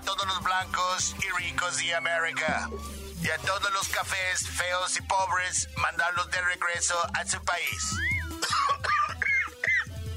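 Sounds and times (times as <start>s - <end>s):
speech: 0.2s - 8.1s
harsh throaty coughs: 8.3s - 10.0s.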